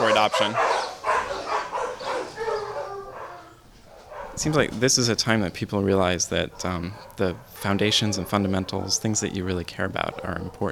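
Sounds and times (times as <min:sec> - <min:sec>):
dogs barking in a kennel: 0:00.0 - 0:10.7
speech: 0:00.2 - 0:00.9, 0:04.4 - 0:10.7
dog whimpering whine in a kennel: 0:01.2 - 0:04.1.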